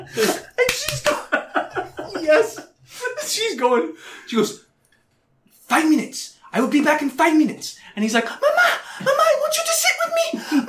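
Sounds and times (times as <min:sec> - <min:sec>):
speech: 0:00.0 - 0:00.5, 0:03.6 - 0:04.6, 0:06.6 - 0:10.6
loud rhythmic laughter: 0:00.0 - 0:02.6
hand slaps imitating fish slapping: 0:00.6 - 0:01.2.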